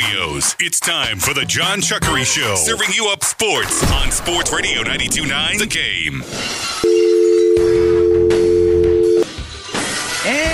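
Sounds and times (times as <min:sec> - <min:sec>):
speech: 0:00.1 - 0:06.9
loud steady telephone dial tone: 0:06.8 - 0:09.2.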